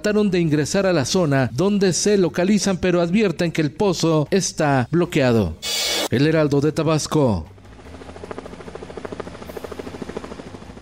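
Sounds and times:
speech: 0.0s - 7.5s
navy helicopter rotor blades beating over a baseball park: 7.4s - 10.7s
low helicopter engine drone: 7.5s - 10.7s.

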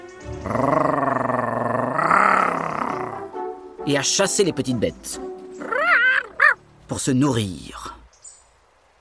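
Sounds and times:
speech: 0.4s - 0.9s, 3.9s - 5.2s, 6.9s - 7.8s
wolf growling: 0.4s - 3.3s, 5.6s - 6.6s.

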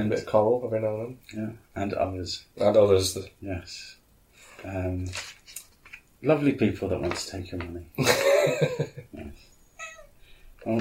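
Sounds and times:
speech: 0.0s - 4.0s, 4.6s - 5.4s, 6.2s - 9.4s
cat meowing: 9.8s - 10.2s.

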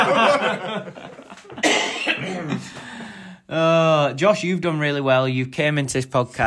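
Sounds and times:
laughter: 0.0s - 1.6s
speech: 0.6s - 1.2s, 2.3s - 6.4s
person coughing: 1.6s - 2.8s.

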